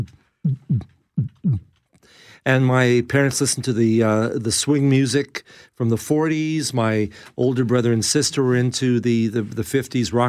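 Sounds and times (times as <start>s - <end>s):
speech: 0.0s - 0.9s, 2.4s - 10.2s
heartbeat: 0.0s - 1.7s.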